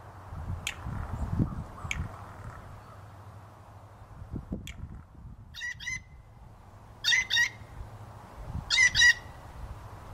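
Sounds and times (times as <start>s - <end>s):
blue jay calls: 0.7s - 3.4s, 4.7s - 6.3s, 7.0s - 7.8s, 8.7s - 9.5s.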